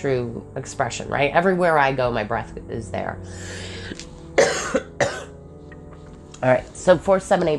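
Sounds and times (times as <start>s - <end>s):
speech: 0.0s - 5.1s, 6.4s - 7.5s
person coughing: 4.4s - 5.4s.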